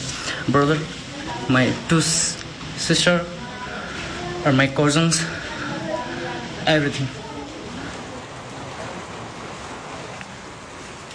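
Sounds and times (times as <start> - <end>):
steady rain pouring down: 0.0 - 11.1
speech: 0.5 - 3.4, 4.4 - 5.4, 6.6 - 7.2.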